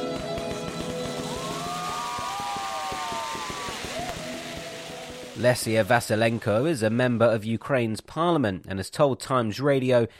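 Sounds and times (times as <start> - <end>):
fireworks crackling and popping in the street: 0.1 - 6.7
whistling firework rockets in the street: 0.3 - 5.9
speech: 5.4 - 10.1.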